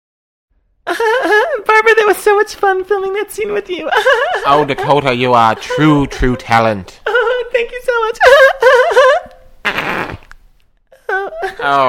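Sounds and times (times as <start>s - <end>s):
speech: 1.9s - 9.8s, 11.2s - 11.8s
laughter: 3.4s - 9.4s, 11.0s - 11.8s
loud drawn-out fart: 9.6s - 10.4s.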